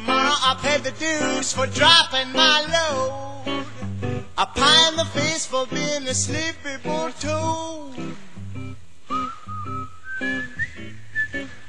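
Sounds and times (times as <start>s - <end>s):
speech: 0.5s - 8.2s
person whistling a sliding melody: 9.1s - 11.6s.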